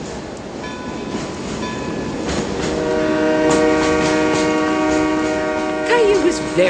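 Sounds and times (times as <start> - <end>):
train approaching the station rumbling: 0.0 - 6.6
sustained horn-like tonal notes: 2.7 - 6.6
speech: 6.3 - 6.6.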